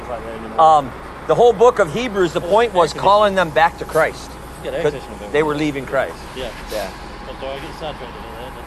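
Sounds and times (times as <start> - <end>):
old truck engine rumbling past outside: 0.0 - 8.6
speech: 0.1 - 8.6.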